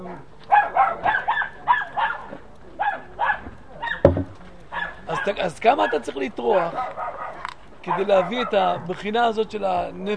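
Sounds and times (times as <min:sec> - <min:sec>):
dog barking: 0:00.5 - 0:04.0, 0:04.7 - 0:06.0, 0:06.7 - 0:08.6
speech: 0:05.2 - 0:07.0, 0:07.8 - 0:10.1.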